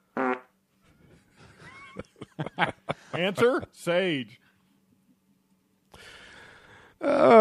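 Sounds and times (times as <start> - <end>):
fart: 0.1 - 0.6
laughter: 1.3 - 3.8
speech: 2.0 - 4.4, 7.2 - 7.3.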